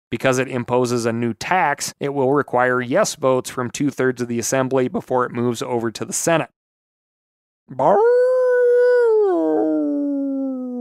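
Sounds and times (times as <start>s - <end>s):
speech: 0.1s - 6.6s, 7.7s - 8.2s
wolf howling: 7.8s - 10.7s.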